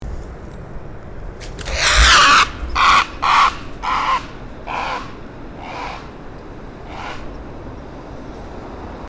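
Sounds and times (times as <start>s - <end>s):
great blue heron call in Chesapeake Bay: 1.6s - 7.4s.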